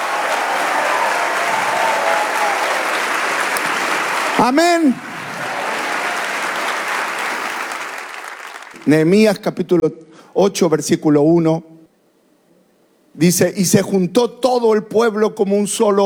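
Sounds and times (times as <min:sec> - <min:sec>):
audience applause: 0:00.0 - 0:08.9
speech: 0:04.4 - 0:05.1, 0:08.8 - 0:11.7, 0:13.2 - 0:16.0.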